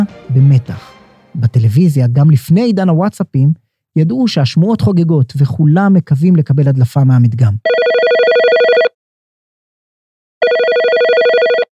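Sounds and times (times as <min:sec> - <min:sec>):
speech: 0:00.0 - 0:08.0
old-style telephone ringing with electric bell trill: 0:07.6 - 0:09.0, 0:10.4 - 0:11.7.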